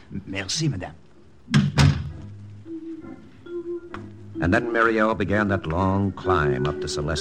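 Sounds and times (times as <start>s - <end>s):
faint hum: 0.0s - 7.1s
speech: 0.2s - 1.6s, 2.8s - 7.1s
heavy door closing with a heavy thunk: 1.5s - 2.3s.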